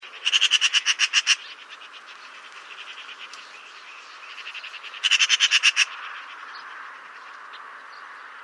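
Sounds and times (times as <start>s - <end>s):
Eurasian magpie Pica pica chattering: 0.0s - 3.4s, 4.2s - 6.4s.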